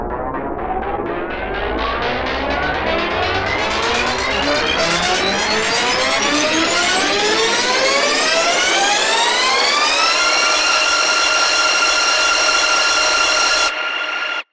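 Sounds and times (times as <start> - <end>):
tape machine spinning up: 0.1 - 14.5.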